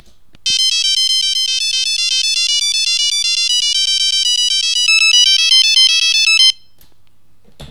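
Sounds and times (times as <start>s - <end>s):
baroque phone ringtone: 0.5s - 6.6s.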